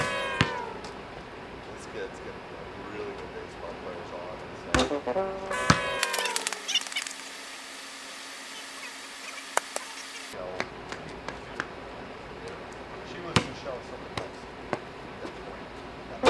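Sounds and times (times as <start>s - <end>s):
basketball shots banked off a backboard in a shooting challenge: 0.0s - 1.0s, 5.6s - 6.4s
voices: 0.0s - 7.7s, 8.4s - 16.2s
hum: 0.0s - 16.2s.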